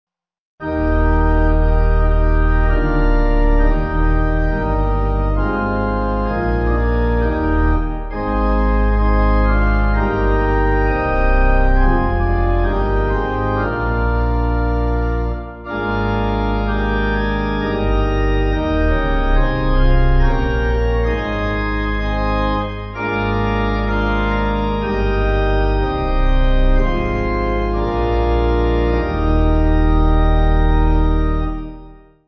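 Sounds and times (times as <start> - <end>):
pipe organ hymn: 0.6 - 32.2.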